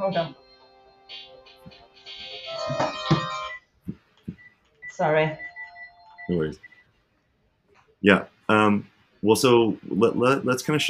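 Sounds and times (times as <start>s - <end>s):
speech: 0.0s - 0.4s, 5.0s - 5.5s, 6.3s - 6.7s, 8.0s - 10.8s
mobile phone ringtone: 2.3s - 3.7s, 4.8s - 6.8s.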